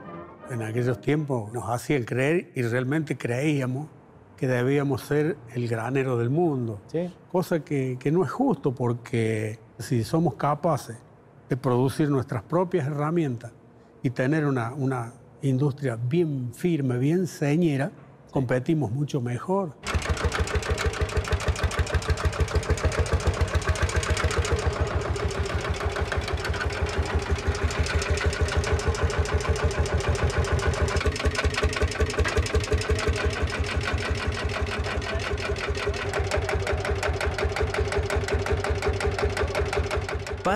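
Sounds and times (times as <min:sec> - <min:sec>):
speech: 0:00.5 - 0:19.9
old tractor engine started and running while working the land: 0:19.8 - 0:40.5.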